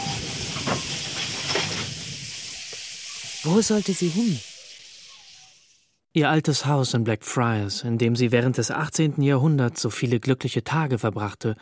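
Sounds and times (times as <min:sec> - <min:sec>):
faint tonal whines: 0:00.0 - 0:06.0
steam train hissing at a railway station platform at Charing Cross in London: 0:00.0 - 0:06.0
speech: 0:03.4 - 0:04.5, 0:06.1 - 0:11.6.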